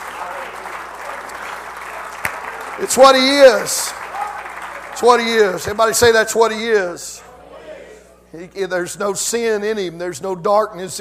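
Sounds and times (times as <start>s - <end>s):
audience clapping in praise of God: 0.0s - 6.3s
speech: 2.8s - 4.0s, 5.0s - 7.3s, 8.3s - 11.0s.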